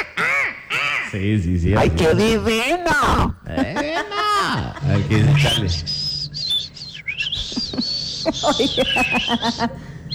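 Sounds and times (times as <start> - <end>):
harsh raspy motmot calls: 0.0 - 1.2, 5.1 - 10.1
speech: 1.1 - 6.0, 8.2 - 10.1
laughter: 3.4 - 10.1.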